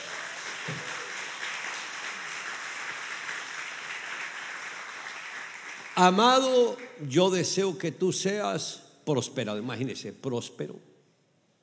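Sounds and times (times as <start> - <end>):
crowd applauding: 0.0 - 7.0
speech: 6.0 - 10.9.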